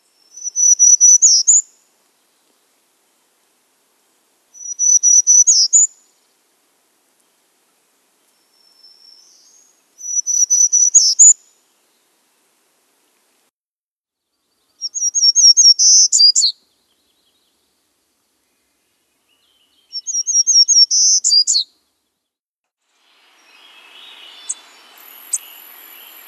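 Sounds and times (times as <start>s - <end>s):
Townsend's Warbler singing: 0.1s - 1.6s, 4.6s - 5.9s, 8.4s - 11.4s, 14.3s - 17.6s, 18.3s - 22.2s, 23.2s - 26.2s.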